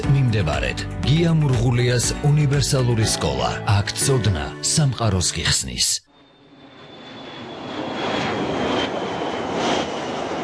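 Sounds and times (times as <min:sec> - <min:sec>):
speech: 0:00.3 - 0:06.1
faint high whine: 0:05.8 - 0:08.2
fixed-wing airplane in flight engine drone: 0:06.1 - 0:10.4.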